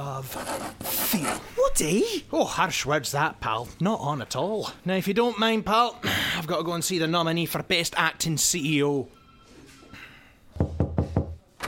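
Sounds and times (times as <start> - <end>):
speech: 0.2 - 9.2
firm knocking on a door: 10.6 - 11.6.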